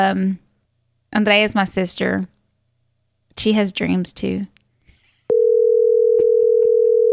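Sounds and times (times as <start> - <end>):
speech: 0.0 - 0.5, 1.1 - 2.4, 3.4 - 4.6
telephone ringing tone while placing a call: 5.3 - 7.1.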